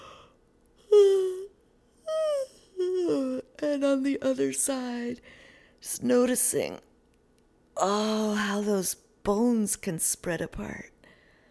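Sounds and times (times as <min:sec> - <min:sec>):
person yawning while stretching: 0:00.0 - 0:03.3
speech: 0:03.6 - 0:06.9, 0:07.8 - 0:10.9.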